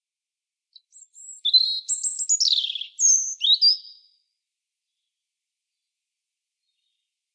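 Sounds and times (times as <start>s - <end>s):
European robin singing: 0.7s - 4.2s.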